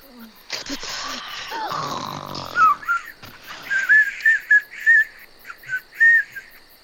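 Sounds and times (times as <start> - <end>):
baby elephants snoring on the steppe at night: 0.0 - 4.2
high whistling squeaks of baby elephants: 2.4 - 6.5.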